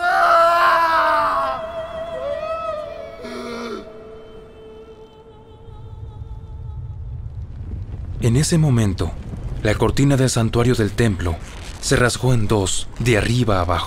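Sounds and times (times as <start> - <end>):
man crying out in anguish: 0.0 - 4.0
low rumble: 1.2 - 13.8
speech: 8.3 - 13.8.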